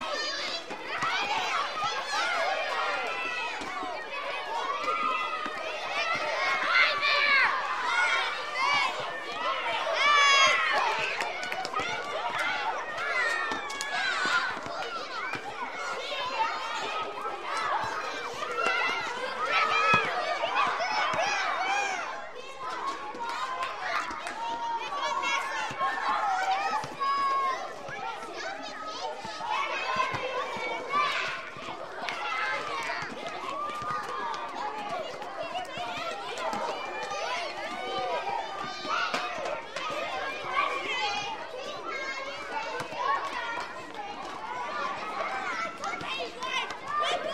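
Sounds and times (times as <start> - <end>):
children playing: 0.0 - 47.3.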